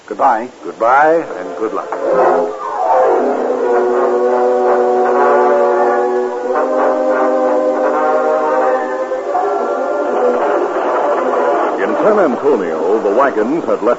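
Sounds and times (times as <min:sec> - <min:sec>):
moving steam train rumbling: 0:00.0 - 0:13.9
speech: 0:00.1 - 0:04.3, 0:12.0 - 0:13.9
steam train whistle blowing a long chord: 0:01.3 - 0:12.0.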